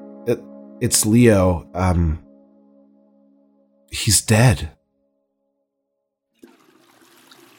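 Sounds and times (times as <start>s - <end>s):
speech: 0.2s - 2.2s, 3.9s - 4.8s
toilet flushing: 6.4s - 7.5s.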